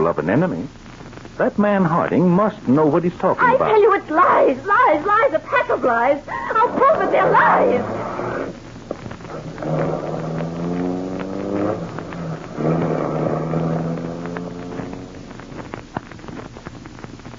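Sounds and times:
speech: 0.1 - 8.0
wind-like noise: 2.8 - 17.3
car engine revving and pulling away through gear shifts: 9.3 - 15.8.

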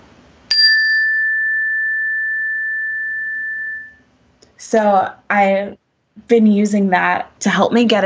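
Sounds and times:
meditation chime struck and ringing: 0.5 - 4.0
speech: 4.6 - 8.0.

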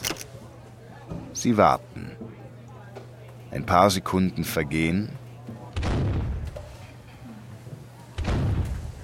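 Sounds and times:
speech: 1.4 - 2.2, 3.6 - 5.2
cannon shots in an office: 5.8 - 6.6, 8.2 - 9.0.

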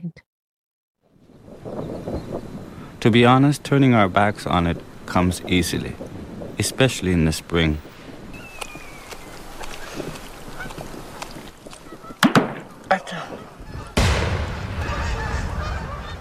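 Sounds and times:
burst of wind or rushing noise: 1.2 - 11.1, 13.5 - 16.1
speech: 3.0 - 6.0, 6.6 - 7.9
wild geese honking: 8.3 - 14.0, 14.6 - 16.1.

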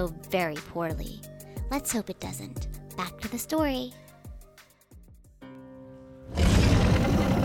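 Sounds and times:
speech: 0.0 - 4.0
loud rough dragon roar: 6.3 - 7.4
quick descending tones: 6.3 - 7.4.

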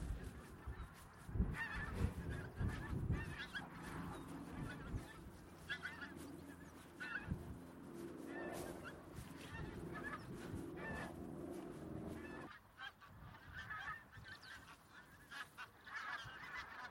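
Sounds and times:
large flock of pink-footed geese honking and yelping on a grassy marsh: 0.0 - 16.9.

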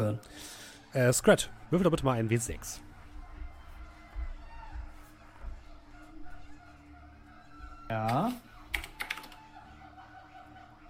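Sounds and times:
speech: 0.0 - 2.9, 7.9 - 8.4
typing on a computer keyboard with a sticking R key: 8.1 - 9.5
laughter: 9.2 - 10.8.

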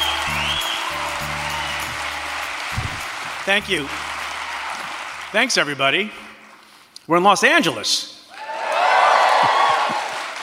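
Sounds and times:
audience members whooping: 0.0 - 3.2, 4.2 - 5.2, 8.3 - 10.4
audience at a live show in Los Angeles applauding and cheering: 0.0 - 6.6, 8.3 - 10.4
speech: 3.5 - 4.1, 5.3 - 6.2, 7.1 - 8.1.

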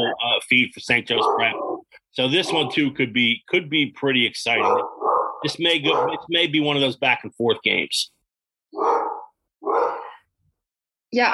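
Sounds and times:
speech: 0.0 - 8.9, 11.1 - 11.3
dog barking: 1.1 - 1.8, 2.4 - 2.9, 4.5 - 6.3, 8.8 - 10.2.

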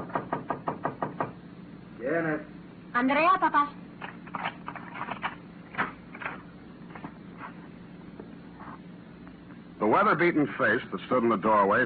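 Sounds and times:
knocking on a wooden door: 0.0 - 1.4
faint hum: 0.0 - 11.8
speech: 2.1 - 3.8, 9.9 - 11.8.

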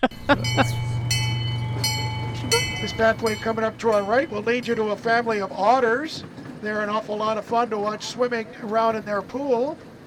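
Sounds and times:
speech: 0.0 - 0.9, 2.8 - 9.9
high metallic squeals of zoo train wheels: 0.0 - 6.7
small zoo train engine drone at the Santa Barbara Zoo: 0.0 - 10.0.

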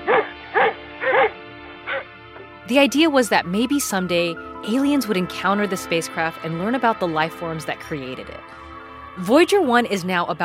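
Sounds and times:
dog barking: 0.0 - 2.1
speech: 2.7 - 10.4.

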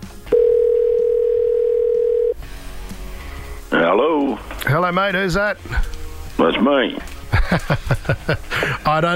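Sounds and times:
electronic telephone ringing tone: 0.3 - 2.4
speech: 3.9 - 9.1
laughter: 7.2 - 8.9.

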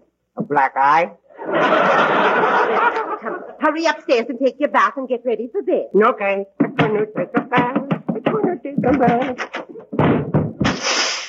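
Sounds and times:
speech: 0.5 - 10.2
laughter: 1.3 - 3.6
person walking into an ajar door: 6.8 - 10.8.

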